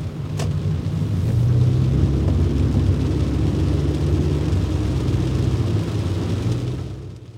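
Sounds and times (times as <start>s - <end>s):
low car engine rumble heard from inside the vehicle: 0.0s - 7.3s.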